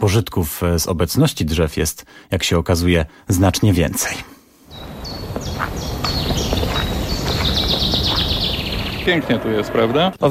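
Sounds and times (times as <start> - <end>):
speech: 0.0 - 4.3, 9.0 - 10.2
birds singing in a forest: 3.3 - 10.2.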